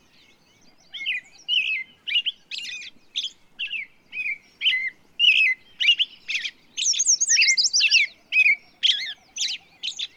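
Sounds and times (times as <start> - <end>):
bird warbling song: 0.0 - 10.1.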